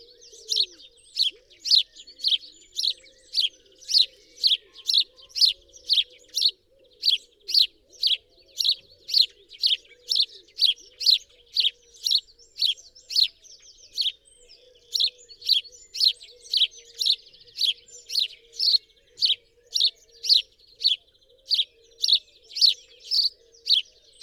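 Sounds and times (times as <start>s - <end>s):
house sparrow chirping: 0.0s - 24.2s.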